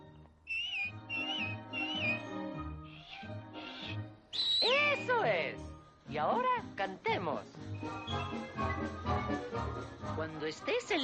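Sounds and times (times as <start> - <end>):
soft music: 0.0 - 11.0
person whistling wavering notes: 0.5 - 3.1, 3.8 - 5.1, 7.7 - 9.0
speech: 5.2 - 11.0.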